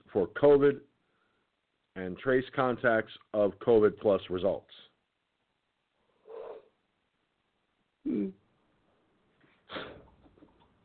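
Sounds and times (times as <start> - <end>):
speech: 0.1 - 0.9, 2.0 - 4.9
person yawning: 8.1 - 8.4.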